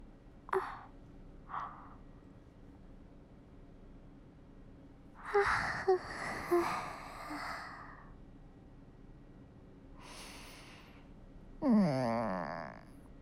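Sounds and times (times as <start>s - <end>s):
quiet breaths: 0.5s - 2.7s, 5.2s - 8.4s, 9.9s - 13.0s
long drawn-out voiced yawn: 11.6s - 12.8s.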